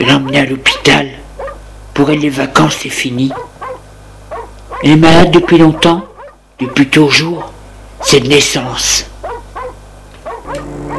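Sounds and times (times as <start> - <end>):
dog barking in a courtyard: 0.0 - 1.6, 3.3 - 8.2, 9.2 - 10.9
steady low hum: 0.0 - 10.9
speech: 0.1 - 1.3, 2.0 - 3.5, 4.8 - 9.1.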